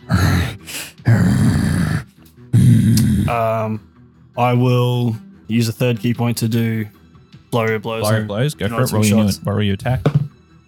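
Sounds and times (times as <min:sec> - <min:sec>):
person imitating a growl while inhaling: 0:00.0 - 0:03.4
throaty tonal groan: 0:00.0 - 0:03.4
speech: 0:03.3 - 0:10.2.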